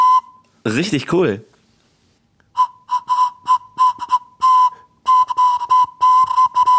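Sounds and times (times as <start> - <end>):
single note blown on a homemade carrot flute: 0.0 - 0.5, 2.5 - 6.7
speech: 0.7 - 1.5.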